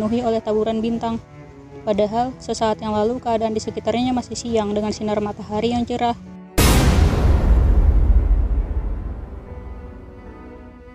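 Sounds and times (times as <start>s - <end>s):
speech: 0.0s - 6.3s
loud explosion boom: 6.6s - 10.4s.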